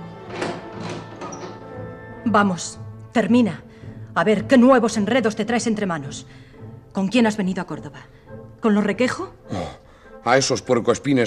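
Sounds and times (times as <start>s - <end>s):
door bolt sliding shut with rasping metallic strokes: 0.1s - 1.9s
speech: 2.3s - 9.6s, 10.2s - 11.2s.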